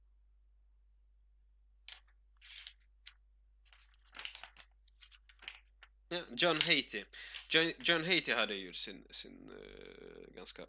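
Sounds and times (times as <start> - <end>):
paper pages being leafed through: 1.9 - 8.0
speech: 6.1 - 10.6.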